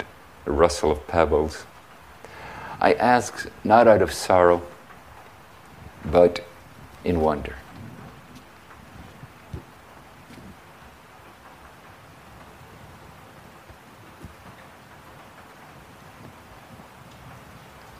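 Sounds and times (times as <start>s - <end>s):
steady rain: 0.0s - 17.9s
speech: 0.6s - 1.7s, 2.8s - 4.7s, 6.0s - 7.6s.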